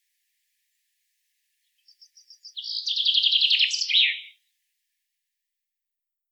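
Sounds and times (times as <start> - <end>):
Common chaffinch Fringilla coelebs song with descending trill: 1.7 - 4.4.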